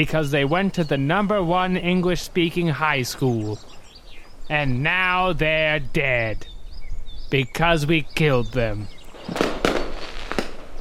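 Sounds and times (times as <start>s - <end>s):
speech: 0.0s - 3.7s, 4.5s - 6.5s, 7.3s - 9.5s
fireworks exploding outdoors: 9.1s - 10.7s.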